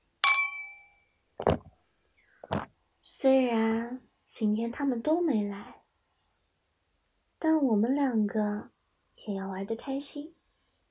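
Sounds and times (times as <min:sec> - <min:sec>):
two glasses of alcohol clinking in a toast at a karaoke venue: 0:00.2 - 0:01.0
speech: 0:03.1 - 0:05.8, 0:07.6 - 0:10.4.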